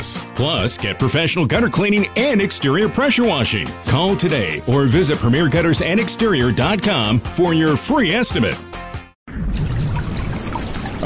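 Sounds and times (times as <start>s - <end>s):
speech: 0.4s - 8.8s
water leaking through a roof: 9.4s - 11.0s.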